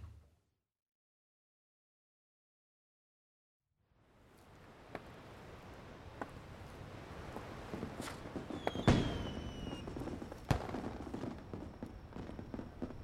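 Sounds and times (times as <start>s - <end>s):
fireworks popping and cracking: 6.1s - 13.0s
faint whistling streak: 8.1s - 10.1s.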